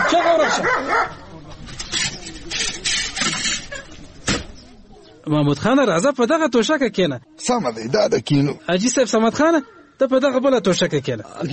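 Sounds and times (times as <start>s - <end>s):
dog barking at arriving guests near a house: 0.0s - 1.3s
people talking loudly: 0.0s - 11.5s
speech: 0.1s - 1.4s, 5.3s - 11.5s.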